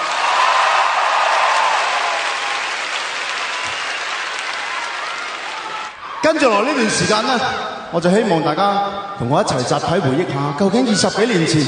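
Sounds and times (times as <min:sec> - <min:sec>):
large audience applauding performers on stage: 0:00.0 - 0:06.0
speech: 0:06.3 - 0:11.6.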